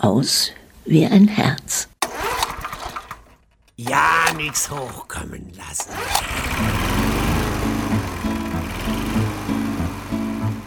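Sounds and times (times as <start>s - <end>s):
speech: 0.0s - 1.9s, 3.8s - 6.8s
lawn mower engine mowing tall grass on a meadow: 2.0s - 5.2s, 5.8s - 10.6s.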